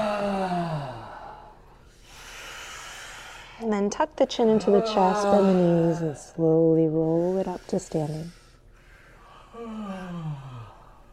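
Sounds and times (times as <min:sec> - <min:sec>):
deep voiced exhale during yoga breathing: 0:00.0 - 0:03.6, 0:07.1 - 0:11.1
speech: 0:03.7 - 0:08.4.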